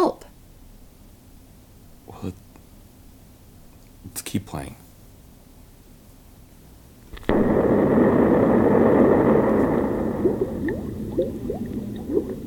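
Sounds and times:
speech: 2.2 - 2.4, 4.2 - 4.8
dense rushing liquid: 7.3 - 12.4.

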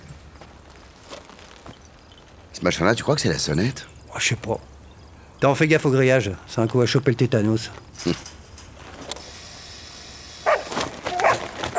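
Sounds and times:
low steady hiss: 0.0 - 11.7
speech: 2.6 - 4.7, 5.4 - 8.3
Belgian Malinois dog barking: 10.4 - 11.7.

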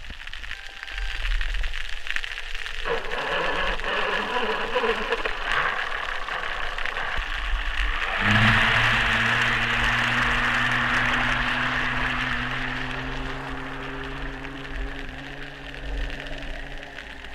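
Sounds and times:
small outboard engine heard underwater: 0.0 - 17.3.

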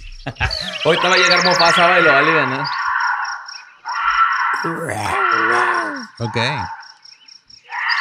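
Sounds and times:
speech: 0.2 - 2.8, 6.2 - 6.8
laughter: 0.3 - 1.6
bobcat raspy high-pitched scream: 4.0 - 6.2.

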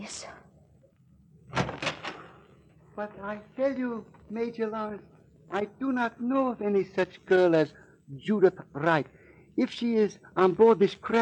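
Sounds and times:
speech: 0.0 - 0.4, 3.0 - 11.2
low quiet hum: 0.0 - 11.2
door opening with rattling clunks: 1.5 - 2.4.

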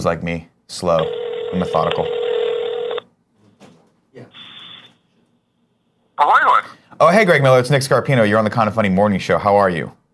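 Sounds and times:
speech: 0.0 - 2.2, 6.2 - 10.0
telephone ringback tone through a tinny phone line: 1.0 - 3.0.

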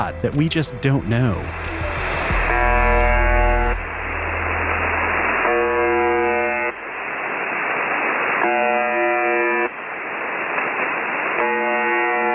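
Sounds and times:
speech: 0.0 - 1.9
constant hissing shortwave radio static: 0.8 - 12.3
shortwave radio station's harsh droning electronic buzz: 1.4 - 7.6, 8.4 - 9.8, 11.3 - 12.3.

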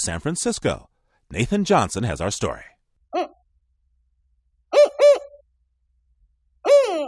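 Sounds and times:
speech: 0.0 - 3.3
spotted owl territorial hooting call: 4.7 - 5.4, 6.7 - 7.0.

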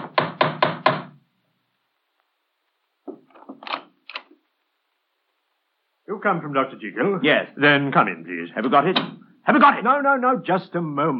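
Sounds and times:
firm knocking on a door: 0.0 - 1.2
speech: 6.2 - 11.1.

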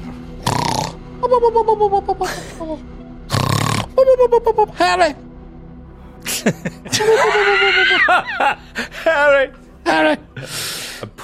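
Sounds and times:
person imitating loud exaggerated snoring: 0.4 - 1.0, 3.3 - 4.1
speech: 1.2 - 3.0, 4.0 - 5.2, 6.2 - 11.2
laughter: 6.2 - 9.0.

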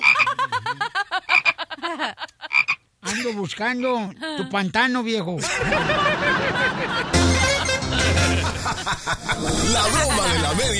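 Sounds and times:
toad croaking sound effect: 0.0 - 0.3, 1.3 - 1.6, 2.5 - 2.8
laughter: 0.0 - 3.5, 5.4 - 10.7
speech: 2.0 - 2.4, 3.1 - 10.7.

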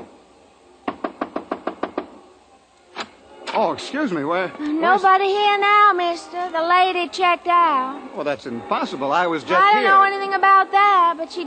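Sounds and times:
knocking on a hotel room door: 0.8 - 2.2
speech: 3.6 - 11.4.

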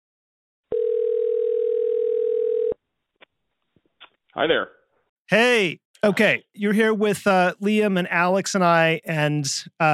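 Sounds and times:
telephone dial tone while dialing a caller in: 0.7 - 2.8
speech: 4.4 - 9.9.

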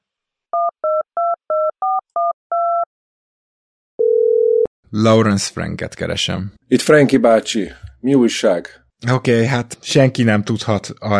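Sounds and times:
telephone keypad dialing beeps: 0.6 - 2.9
speech: 4.9 - 11.1.

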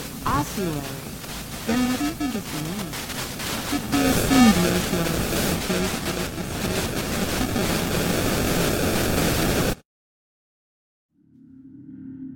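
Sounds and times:
loud dense broadband recording static hiss: 0.0 - 9.8
speech: 0.3 - 8.2.

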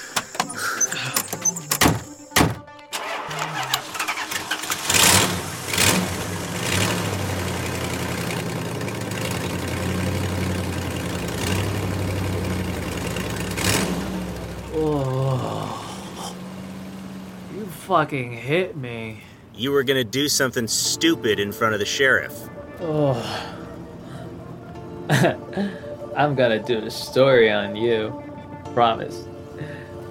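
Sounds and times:
solid truck door thunks: 0.0 - 2.7
truck engine cranking, revving and idling: 0.0 - 15.5
speech: 17.9 - 23.5, 25.2 - 29.3.

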